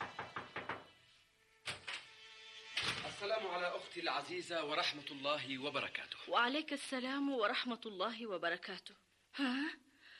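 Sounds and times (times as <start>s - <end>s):
firm knocking on a door: 0.0s - 1.0s
speech: 3.2s - 9.8s.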